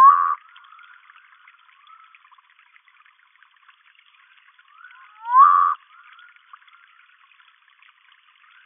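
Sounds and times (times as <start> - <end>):
Humayun's night frog Nyctibatrachus humayuni giving rising whistle-like call: 0.0 - 0.4, 4.9 - 5.8.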